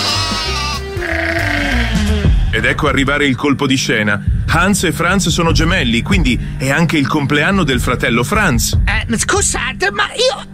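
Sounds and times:
sheep bleating: 0:00.0 - 0:02.3
speech: 0:02.6 - 0:10.5.

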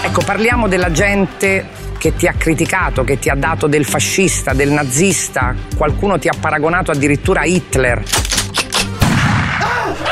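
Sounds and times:
speech: 0:00.1 - 0:08.4
gunshot: 0:09.0 - 0:10.0.

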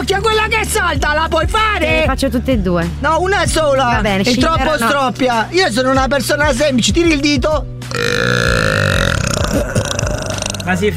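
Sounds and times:
speech: 0:00.0 - 0:08.8, 0:10.7 - 0:10.9
loud long burp: 0:07.9 - 0:10.9.

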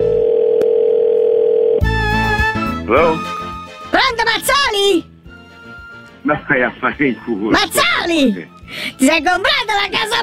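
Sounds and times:
telephone dial tone while a call is being placed: 0:00.0 - 0:01.8
speech: 0:02.9 - 0:03.4, 0:04.2 - 0:05.1, 0:06.3 - 0:10.2.

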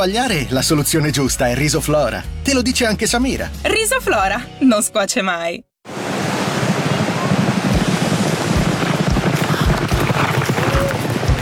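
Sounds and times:
speech: 0:00.0 - 0:05.7
gusty wind noise: 0:05.9 - 0:11.3
sea waves washing onto a beach: 0:05.9 - 0:11.3
dull low thumps: 0:07.5 - 0:11.3.

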